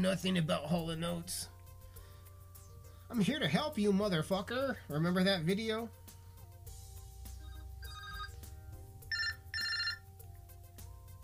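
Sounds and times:
speech: 0.0s - 1.5s, 3.1s - 6.1s
telephone ringing with electronic trill: 7.4s - 10.2s.

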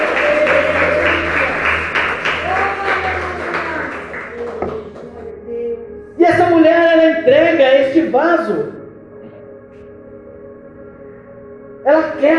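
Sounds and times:
audience applauding: 0.0s - 5.2s
faint tonal hum: 0.0s - 12.3s.

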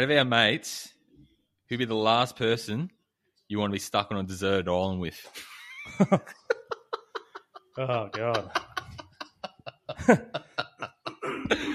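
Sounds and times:
speech: 0.0s - 0.9s, 1.7s - 6.5s, 7.8s - 8.7s, 9.6s - 10.5s
laughter: 5.3s - 11.7s
throat clearing: 11.2s - 11.7s.

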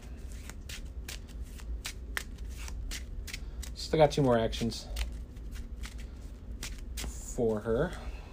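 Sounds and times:
deck of cards shuffled during a tabletop card game: 0.2s - 3.8s, 5.0s - 7.2s
speech: 3.9s - 5.0s, 7.4s - 8.1s.

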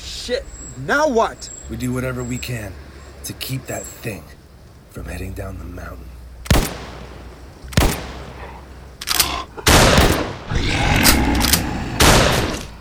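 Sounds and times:
speech: 0.3s - 4.4s, 5.0s - 6.1s
gunfire from guns on a mountain: 6.4s - 12.6s.

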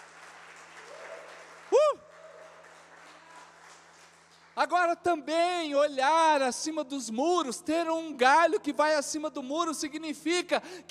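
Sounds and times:
audience applauding loudly: 0.0s - 4.7s
speech: 4.6s - 10.8s.

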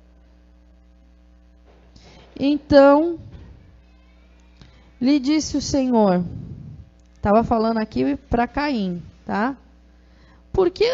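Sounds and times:
electric fan running: 0.0s - 10.9s
speech: 2.4s - 3.3s, 5.0s - 6.4s, 7.2s - 9.6s, 10.6s - 10.9s.

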